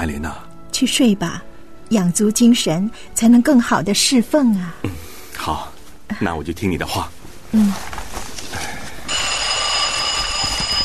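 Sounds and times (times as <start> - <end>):
speech: 0.0 - 8.0
telephone ringing late at night: 9.1 - 10.8.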